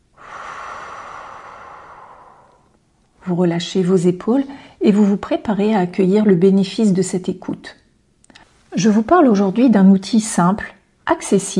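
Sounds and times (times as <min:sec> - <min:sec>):
slow inhale through the nose and exhale through the mouth: 0:00.0 - 0:03.2
speech: 0:03.3 - 0:07.8, 0:08.8 - 0:11.5.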